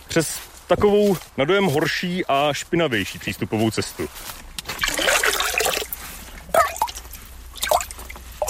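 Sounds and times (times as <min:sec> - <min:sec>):
speech: 0:00.2 - 0:04.4
water from forest spring overflow trickling and dripping in stone: 0:04.6 - 0:08.4.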